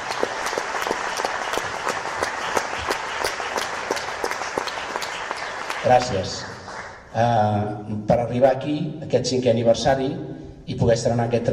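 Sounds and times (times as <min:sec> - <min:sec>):
audience applause at a cobla band's anniversary concert: 0:00.0 - 0:07.1
speech: 0:05.8 - 0:06.5, 0:07.1 - 0:11.5.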